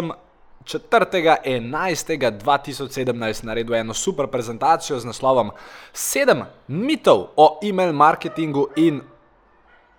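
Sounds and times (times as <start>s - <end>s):
speech: 0.0s - 9.1s
dog barking outside: 8.1s - 9.9s.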